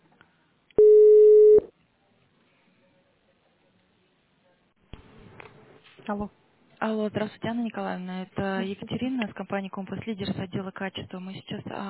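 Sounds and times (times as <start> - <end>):
telephone line tone during call transfer: 0.8 - 1.7
speech: 6.1 - 11.8.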